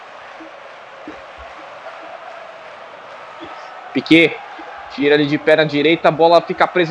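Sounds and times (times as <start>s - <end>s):
large stadium crowd of football fans cheering at a home match: 0.0s - 6.8s
speech: 3.9s - 6.8s.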